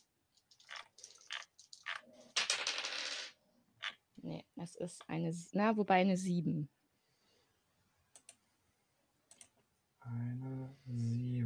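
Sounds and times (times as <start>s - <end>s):
dice rolled during a tabletop role-playing game: 1.1s - 3.3s
speech: 4.2s - 6.8s, 10.1s - 11.2s.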